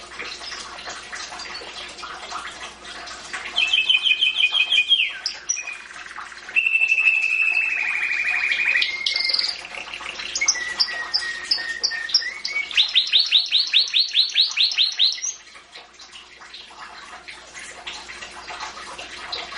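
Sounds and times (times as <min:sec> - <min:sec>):
Domestic canary singing: 0:03.6 - 0:06.0, 0:06.6 - 0:15.4.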